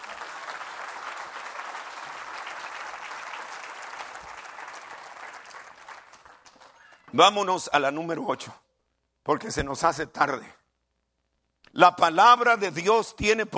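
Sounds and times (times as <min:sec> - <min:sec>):
audience applauding: 0:00.0 - 0:07.4
speech: 0:07.1 - 0:08.6, 0:09.2 - 0:10.6, 0:11.8 - 0:13.5.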